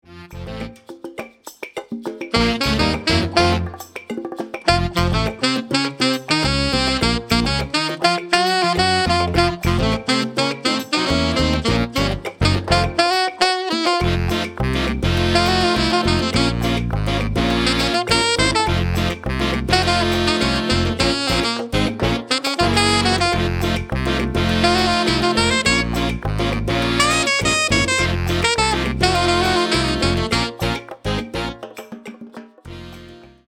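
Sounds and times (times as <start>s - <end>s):
saxophone ensemble: 0.1s - 0.8s, 2.3s - 4.0s, 4.7s - 31.6s, 32.7s - 33.4s.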